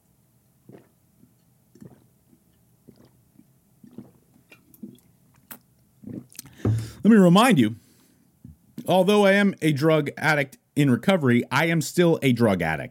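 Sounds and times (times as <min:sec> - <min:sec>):
person sipping a caffeinated drink: 0:00.6 - 0:07.0
swallowing: 0:00.6 - 0:07.0
handling bump: 0:06.6 - 0:07.0
speech: 0:07.0 - 0:07.8, 0:08.9 - 0:12.8.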